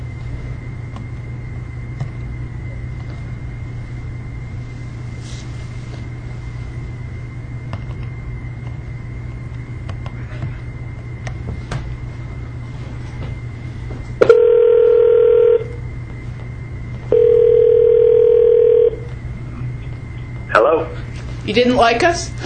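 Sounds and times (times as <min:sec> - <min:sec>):
low hum: 0:00.0 - 0:22.4
telephone line tones after a call drops: 0:14.2 - 0:15.8, 0:17.1 - 0:19.1
speech: 0:21.5 - 0:22.4.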